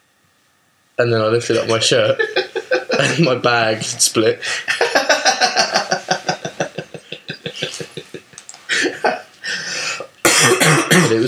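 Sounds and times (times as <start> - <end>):
speech: 1.0 - 2.4, 3.0 - 4.9, 11.0 - 11.2
laughter: 1.6 - 9.4
person coughing: 10.2 - 11.2.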